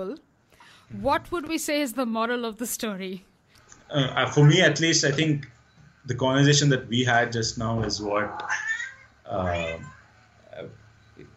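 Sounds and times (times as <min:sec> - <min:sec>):
speech: 0:00.0 - 0:00.3, 0:00.9 - 0:03.3, 0:03.9 - 0:08.7, 0:09.3 - 0:10.0, 0:10.6 - 0:10.8
cat meowing: 0:08.1 - 0:10.1.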